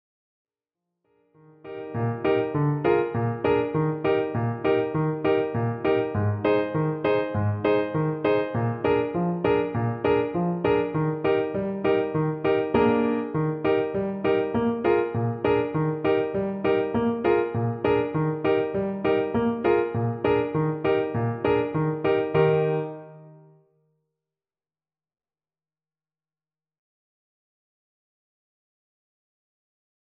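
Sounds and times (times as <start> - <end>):
finger exercise music in E-flat major: 1.7 - 23.6.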